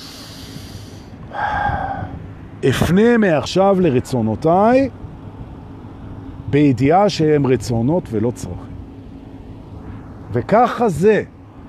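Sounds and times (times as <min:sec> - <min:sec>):
deep breath drawn in: 0:00.0 - 0:02.2
speech: 0:01.3 - 0:01.6, 0:02.6 - 0:05.0, 0:06.5 - 0:08.7, 0:10.3 - 0:11.3.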